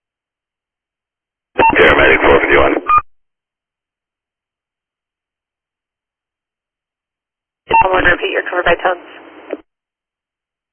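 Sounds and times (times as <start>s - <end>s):
garbled radio chatter: 1.6s - 2.9s, 7.7s - 9.6s
electronic dispatch tones over tinny radio transmission: 1.6s - 3.0s.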